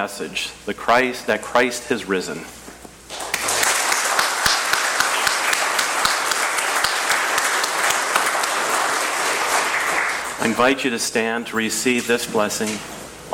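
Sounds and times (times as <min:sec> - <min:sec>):
speech: 0:00.0 - 0:02.6, 0:10.4 - 0:13.3
church service audience applause: 0:03.1 - 0:10.5.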